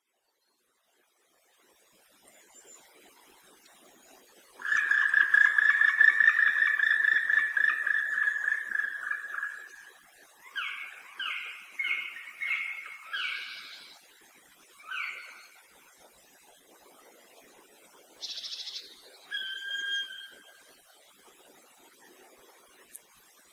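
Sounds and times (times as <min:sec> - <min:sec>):
black woodpecker call: 0:04.6 - 0:14.0, 0:14.8 - 0:15.6, 0:19.3 - 0:20.5.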